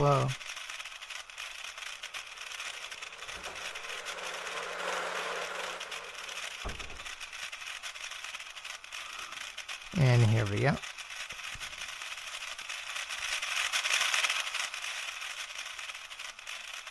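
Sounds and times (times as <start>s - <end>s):
speech: 0.0s - 0.5s, 10.0s - 10.8s
small electric Lego toy car motor running: 0.0s - 16.8s.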